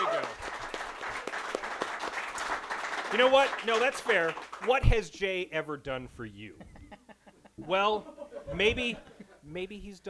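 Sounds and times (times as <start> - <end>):
crowd applauding at a comic book shop in downtown Edmonton: 0.0 - 5.0
speech: 3.1 - 6.7, 7.6 - 10.0
laughter: 6.5 - 9.5.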